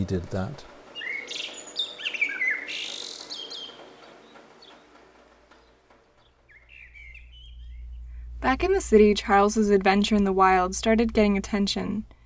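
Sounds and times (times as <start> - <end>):
speech: 0.0 - 0.7, 8.4 - 12.2
birdsong recording played on an iPod: 0.6 - 8.3.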